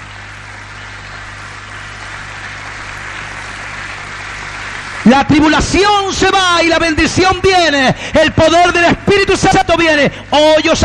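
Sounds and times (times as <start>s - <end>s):
large crowd applauding loudly: 0.0s - 7.4s
low steady hum: 0.0s - 10.8s
speech: 5.1s - 10.8s.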